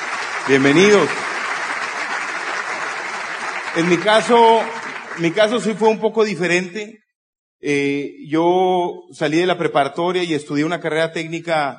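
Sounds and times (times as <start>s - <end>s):
crowd applauding at a business convention: 0.0s - 6.2s
speech: 0.5s - 1.3s, 3.8s - 7.0s, 7.6s - 11.7s.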